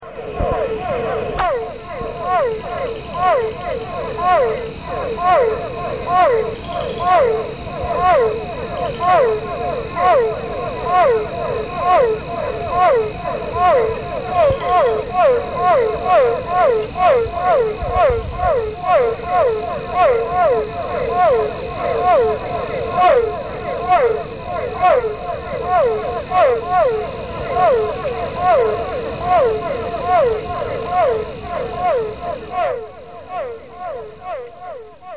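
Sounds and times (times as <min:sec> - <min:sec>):
Physalaemus cuvieri calling: 0:00.0 - 0:35.1.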